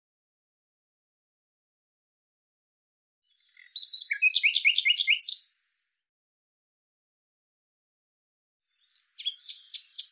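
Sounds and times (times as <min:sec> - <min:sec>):
bird song with bright chirps and repeated two-part notes: 0:03.2 - 0:05.6, 0:08.6 - 0:10.1.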